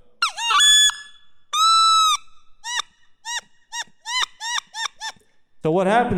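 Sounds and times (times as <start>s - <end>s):
imitated wood duck sitting calls made on a call: 0.2s - 5.2s
speech: 5.6s - 6.1s.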